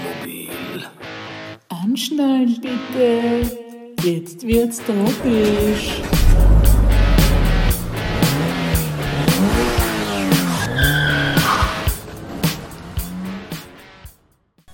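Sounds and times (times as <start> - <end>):
speech: 2.0 - 6.2
car engine starting: 5.1 - 14.0
car tires squealing as the wheels skid: 5.2 - 13.8.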